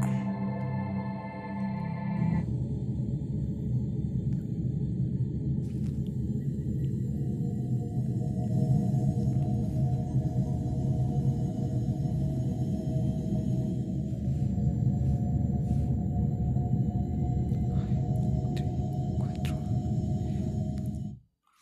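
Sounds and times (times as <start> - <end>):
steady dense low rumble of sonified space recording: 0.0 - 21.2
faint whistling chirps: 6.2 - 7.7.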